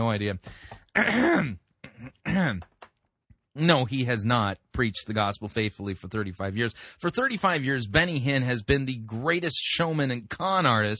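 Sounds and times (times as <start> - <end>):
speech: 0.0 - 2.7, 3.6 - 10.9
man clearing his throat: 0.9 - 2.7.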